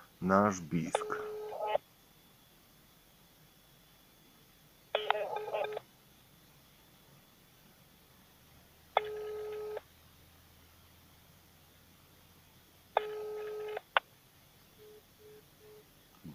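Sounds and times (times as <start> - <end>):
buzzy telephone tones: 0.0 - 7.5, 8.9 - 9.9, 12.9 - 16.3
speech: 0.2 - 1.2.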